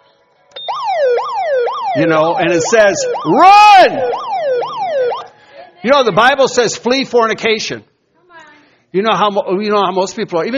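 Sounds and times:
loud wailing siren: 0.6s - 5.4s
speech: 2.0s - 4.2s, 5.8s - 7.9s, 8.9s - 10.5s.

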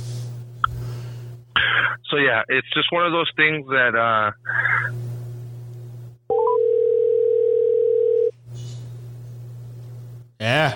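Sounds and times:
low electrical hum: 0.0s - 10.7s
speech: 2.1s - 5.0s, 10.5s - 10.7s
steady loud telephone dial tone: 6.3s - 8.3s.

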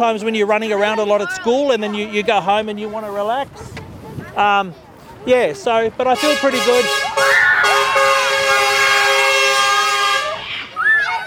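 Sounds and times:
speech: 0.0s - 3.8s, 4.4s - 7.5s
truck air horn blast: 6.2s - 10.4s.

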